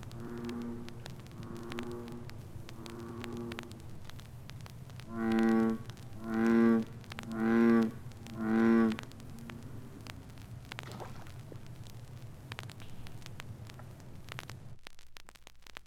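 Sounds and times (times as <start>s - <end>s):
bullfrog croaking: 0.0s - 3.9s, 5.0s - 10.1s
crackling clicks: 0.0s - 15.8s.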